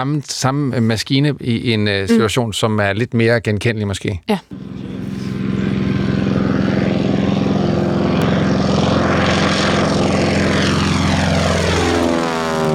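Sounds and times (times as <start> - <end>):
speech: 0.0 - 4.8
propeller airplane engine droning as the plane passes: 4.5 - 12.7.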